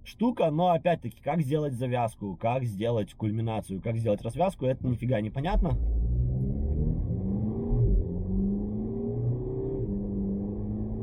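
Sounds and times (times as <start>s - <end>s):
speech: 0.1s - 6.0s
fast car engine accelerating and shifting through gears: 5.6s - 11.0s.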